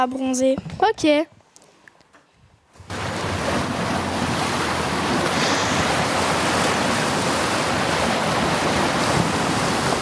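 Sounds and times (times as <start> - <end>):
speech: 0.0 - 1.4
wind noise: 2.3 - 10.0
sea waves at a beach: 2.8 - 10.0.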